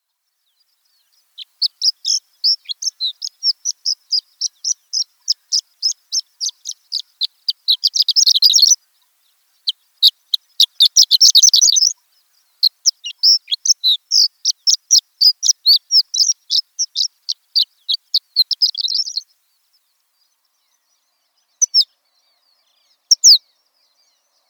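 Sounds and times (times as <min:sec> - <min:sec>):
Horned Lark calling: 0:01.4 - 0:08.8, 0:09.6 - 0:12.0, 0:12.6 - 0:19.3, 0:21.6 - 0:21.9, 0:23.1 - 0:23.4.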